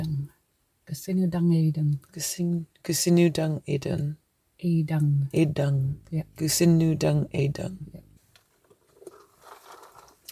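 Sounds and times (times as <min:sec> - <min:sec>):
speech: 0:00.9 - 0:08.0
footsteps crunching over a pebbly beach: 0:08.8 - 0:10.3.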